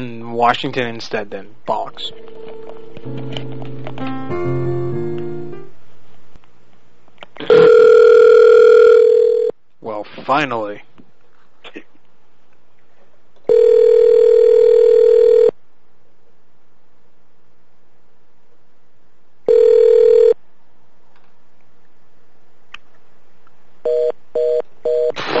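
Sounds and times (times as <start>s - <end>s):
speech: 0.0s - 2.4s, 10.2s - 10.9s
telephone dial tone after call hung up: 7.5s - 9.5s, 13.5s - 15.5s, 19.5s - 20.4s.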